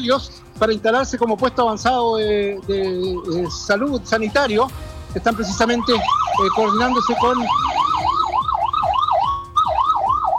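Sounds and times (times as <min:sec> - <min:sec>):
speech: 0:00.0 - 0:07.8
low traffic rumble: 0:00.0 - 0:10.3
fire engine siren wailing in a fast up-and-down yelp: 0:01.8 - 0:04.7, 0:05.3 - 0:10.3.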